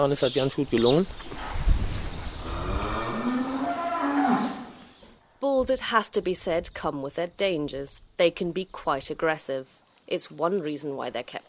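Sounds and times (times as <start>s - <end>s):
speech: 0.0s - 1.6s, 5.6s - 11.4s
cows mooing: 2.4s - 4.9s.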